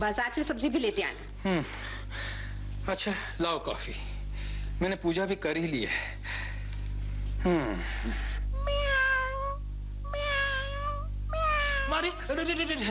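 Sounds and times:
speech: 0.0s - 1.9s, 2.9s - 4.1s, 4.8s - 6.2s, 7.4s - 8.3s, 12.0s - 12.8s
faint low hum: 0.0s - 12.8s
cat meowing: 8.6s - 12.2s.

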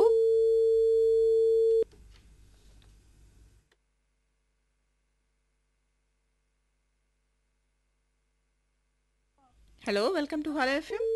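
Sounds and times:
telephone line tone on a radio phone-in call: 0.0s - 1.9s, 10.9s - 11.1s
speech: 9.9s - 11.1s.

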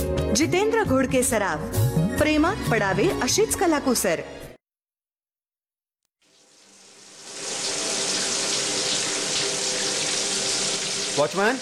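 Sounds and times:
speech: 0.4s - 4.5s, 11.2s - 11.5s
water running from an overflowing tank: 7.0s - 11.5s.

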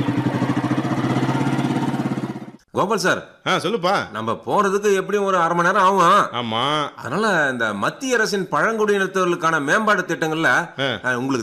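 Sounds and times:
motorcycle engine starting up and running: 0.0s - 2.6s
speech: 2.8s - 11.4s.

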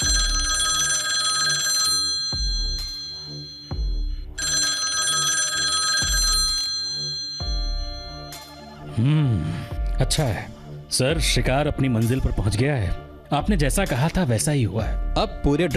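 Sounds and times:
telephone ringing with a bright electronic trill: 0.0s - 8.6s
low rhythmic pulse: 0.0s - 11.6s
speech: 10.0s - 15.7s.

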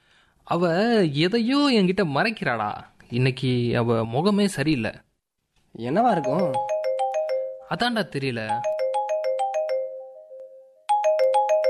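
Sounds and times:
speech: 0.5s - 5.1s, 5.8s - 6.7s, 7.7s - 8.7s
phone ringtone of bright electronic tones: 5.9s - 11.6s.

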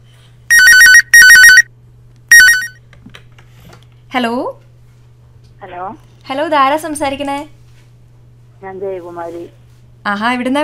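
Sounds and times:
telephone ringing with a bright warbling electronic ringtone for an incoming call: 0.5s - 1.7s, 2.3s - 2.8s
speech: 4.1s - 4.6s, 5.6s - 7.6s, 8.6s - 10.6s.

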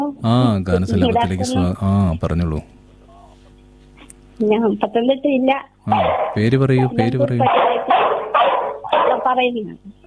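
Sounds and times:
speech: 0.1s - 2.8s, 4.4s - 7.6s, 9.3s - 10.0s
caller speaking on a live telephone call: 0.9s - 1.7s
dog barking: 5.9s - 6.5s, 7.4s - 9.4s.

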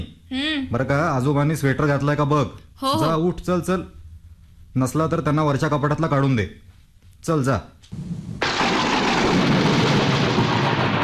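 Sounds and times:
speech: 0.0s - 4.0s, 4.8s - 8.5s
thunder crack from a thunderstorm: 8.0s - 11.0s
heavy rain from a thunderstorm: 8.4s - 11.0s.

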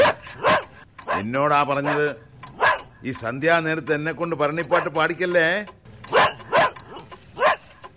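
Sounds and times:
dog barking: 0.0s - 3.0s, 4.7s - 5.0s, 6.1s - 7.8s
speech: 1.2s - 2.3s, 3.0s - 5.8s.

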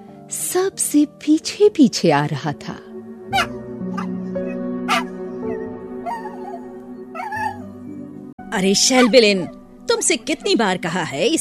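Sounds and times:
speech: 0.3s - 3.5s, 8.6s - 11.3s
steady sustained musical drone: 2.8s - 8.4s
puppy with dragging hind legs whimpering and yelping: 4.9s - 7.7s.

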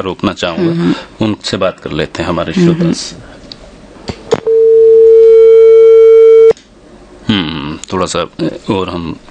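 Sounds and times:
speech: 0.0s - 3.3s, 7.9s - 9.2s
telephone line tone while caller connects to a call-in program: 4.4s - 6.6s.

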